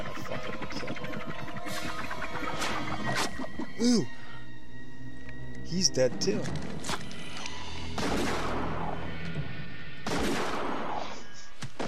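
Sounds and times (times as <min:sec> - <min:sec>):
dense continuous horror film soundtrack: 0:00.0 - 0:11.8
speech: 0:03.8 - 0:04.2, 0:05.7 - 0:06.8
loud booming gunshots in a horror film scene: 0:10.0 - 0:11.0.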